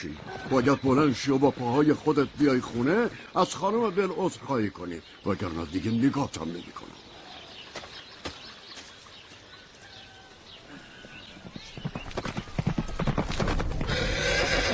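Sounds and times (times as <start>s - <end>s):
speech: 0.0s - 7.0s
horse hooves clip-clopping: 11.0s - 14.7s
horse whinnying: 13.7s - 14.7s.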